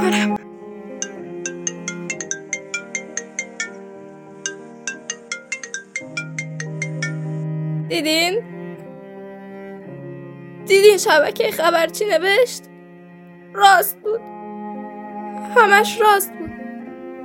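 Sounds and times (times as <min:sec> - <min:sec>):
melodic phone ringtone: 0:01.0 - 0:07.4
speech: 0:07.9 - 0:08.5, 0:10.7 - 0:12.7, 0:13.6 - 0:14.3, 0:15.6 - 0:16.4.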